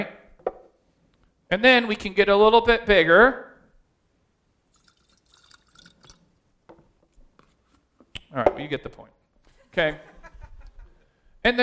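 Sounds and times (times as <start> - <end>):
speech: 1.5 - 3.4, 8.3 - 9.2, 9.8 - 10.1, 11.4 - 11.6
water pouring and splashing into a container: 4.7 - 6.3
laughter: 9.5 - 11.1.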